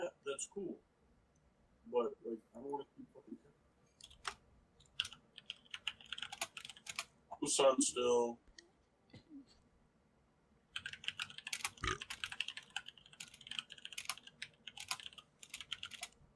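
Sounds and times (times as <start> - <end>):
speech: 0.4 - 0.9, 1.8 - 3.5, 7.4 - 8.4
rapid typing on a computer keyboard: 4.0 - 7.1, 10.8 - 16.2.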